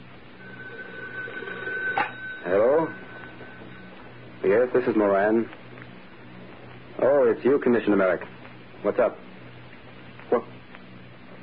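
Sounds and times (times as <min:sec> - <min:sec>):
faint hum: 0:00.0 - 0:11.4
telephone ringing with steady bell tone: 0:00.3 - 0:05.4
speech: 0:02.5 - 0:03.0, 0:04.4 - 0:05.6, 0:07.0 - 0:09.2.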